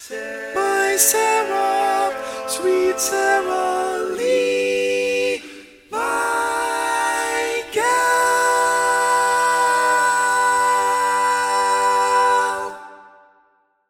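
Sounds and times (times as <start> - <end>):
tenor singing barbershop tags: 0.0 - 12.9.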